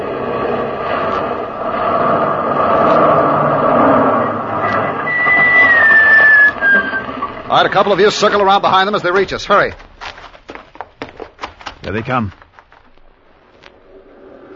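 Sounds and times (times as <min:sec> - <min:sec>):
truck tires or brakes squealing while swerving across the road: 0:00.0 - 0:09.4
truck engine rumbling: 0:00.0 - 0:14.5
speech: 0:07.5 - 0:09.8, 0:11.8 - 0:12.4.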